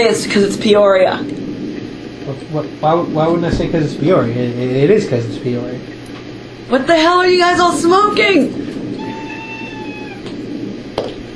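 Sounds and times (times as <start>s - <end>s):
speech: 0.0s - 1.4s, 2.3s - 6.0s, 6.7s - 8.7s, 11.0s - 11.2s
constant low noise: 0.0s - 11.3s
cat meowing: 8.9s - 10.4s.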